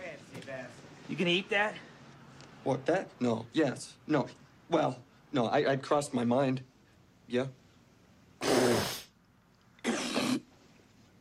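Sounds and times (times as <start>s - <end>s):
speech: 0.5s - 1.9s, 2.6s - 6.7s, 7.3s - 7.6s
person hawking up and spitting thick phlegm: 8.4s - 9.1s, 9.8s - 10.5s.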